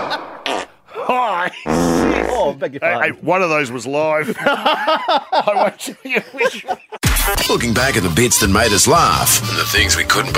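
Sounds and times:
laughter: 0.0 - 2.6, 4.2 - 7.7
farting noises: 0.4 - 0.8, 1.6 - 2.5
speech: 1.1 - 10.3.

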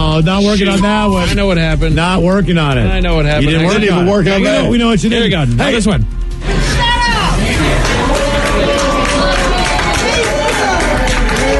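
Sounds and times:
speech: 0.2 - 6.8
cheering: 7.0 - 11.5
large crowd clapping: 7.4 - 11.5.

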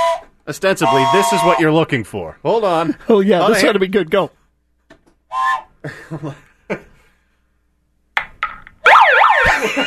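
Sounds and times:
blowhorn siren warbling: 0.0 - 1.7, 8.9 - 9.5
speech: 0.5 - 4.4, 5.3 - 6.9
laughter: 5.8 - 7.0, 9.4 - 9.8.

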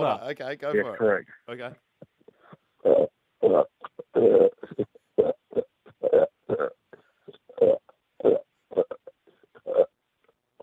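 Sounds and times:
speech: 0.0 - 1.9, 3.5 - 4.5
person burping the melody of a rock guitar riff: 2.9 - 9.9.

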